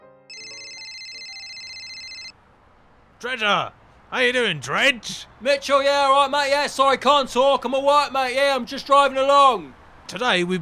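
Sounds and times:
telephone ringing with an electronic trill: 0.3s - 2.4s
speech: 3.2s - 10.5s.

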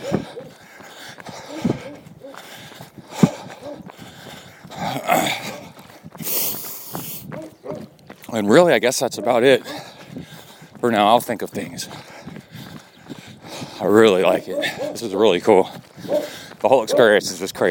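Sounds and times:
dog barking: 3.6s - 3.8s, 7.4s - 7.9s, 9.1s - 9.8s, 14.4s - 15.0s, 16.0s - 17.2s
speech: 8.4s - 9.9s, 10.8s - 12.1s, 13.9s - 17.6s.

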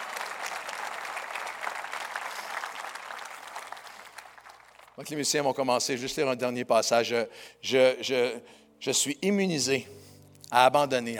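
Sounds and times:
large group applauding at a morning worship service: 0.0s - 5.1s
speech: 5.0s - 11.1s.

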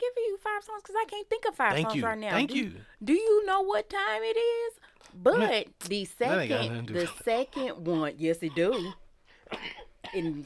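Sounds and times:
speech: 0.6s - 10.4s
person coughing: 8.5s - 10.4s.

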